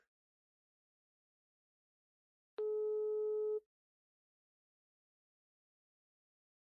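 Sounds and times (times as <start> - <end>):
phone ringback tone, call unanswered: 2.6 - 3.6.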